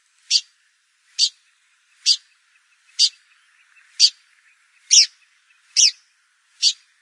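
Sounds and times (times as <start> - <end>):
Blyth's pipit calls: 0.3 - 0.5, 1.1 - 6.0, 6.6 - 6.9.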